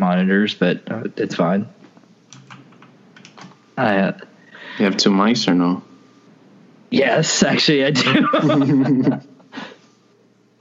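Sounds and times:
speech: 0.2 - 1.8, 3.8 - 5.9, 6.9 - 9.6
computer keyboard typing: 2.3 - 3.6
laughter: 7.5 - 9.4.

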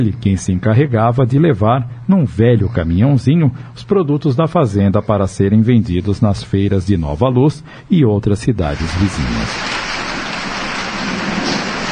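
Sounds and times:
speech: 0.0 - 9.8
heavy rain falling: 8.9 - 11.9.

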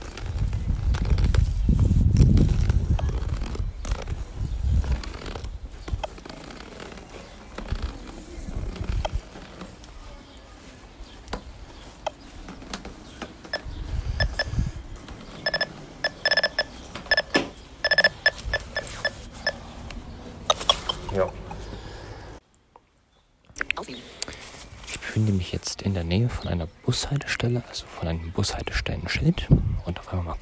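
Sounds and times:
clicking and scraping movement noises of a walking wearer: 0.0 - 10.0, 11.2 - 21.7
electronic obstacle-detector device hung around the neck beeping: 13.5 - 14.6, 15.4 - 19.6, 20.5 - 21.2
speech: 25.6 - 30.4.

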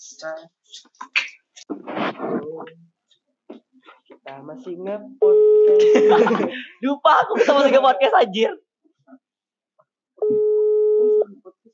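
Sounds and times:
speech: 0.1 - 3.6, 4.2 - 9.2
laughter: 5.7 - 8.2
home telephone electronic busy-signal tone: 10.2 - 11.3.

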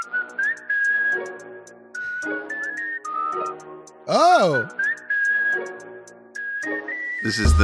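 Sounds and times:
whistled jingle melody in a song remix: 0.0 - 7.6
speech: 3.4 - 4.8, 7.2 - 7.6
person exclaiming: 4.1 - 4.7.

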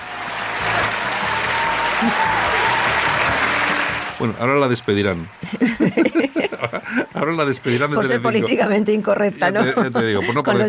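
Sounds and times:
crowd applauding: 0.0 - 8.3
speech: 2.0 - 2.5, 4.2 - 10.6
laughter: 5.4 - 8.4, 9.4 - 10.6.

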